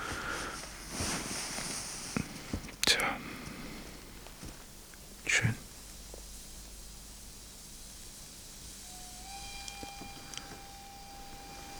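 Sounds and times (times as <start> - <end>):
steady hiss of rail noise at a train station: 0.0 - 11.7
sustained whistle-like tone: 8.6 - 11.7.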